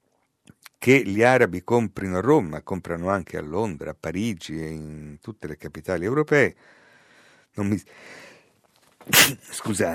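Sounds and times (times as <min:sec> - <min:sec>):
speech: 0:00.8 - 0:06.8, 0:07.5 - 0:08.3, 0:09.0 - 0:09.9
person sneezing: 0:09.0 - 0:09.6
short voiced sounds: 0:09.1 - 0:09.6.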